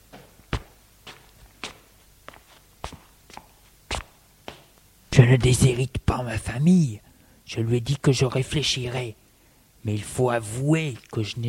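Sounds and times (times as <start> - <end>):
footsteps of a man walking: 0.0 - 4.8
speech: 5.2 - 9.2, 9.8 - 11.4.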